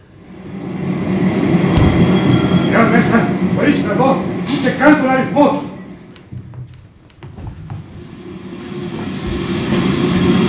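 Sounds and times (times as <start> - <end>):
tram rumbling while stopping in front of a shop: 0.0 - 10.4
speech: 3.7 - 5.6.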